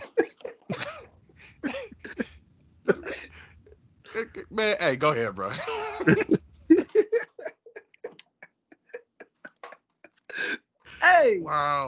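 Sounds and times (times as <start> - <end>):
laughter: 0.0 - 3.6, 4.2 - 11.4
person coughing: 0.7 - 2.3, 2.9 - 3.4
speech: 4.6 - 6.4.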